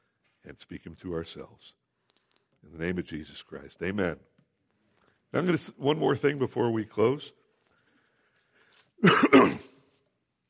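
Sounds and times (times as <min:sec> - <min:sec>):
speech: 0:00.4 - 0:01.8, 0:02.6 - 0:04.3, 0:05.3 - 0:07.4, 0:09.0 - 0:09.7
loud raspy throaty cough: 0:09.0 - 0:09.8.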